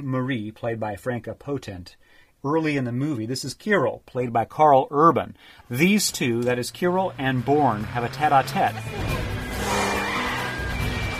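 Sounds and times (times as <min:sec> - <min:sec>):
speech: 0:00.0 - 0:09.4
roaring car engine: 0:06.8 - 0:11.1
tires skidding and squealing: 0:07.4 - 0:11.1.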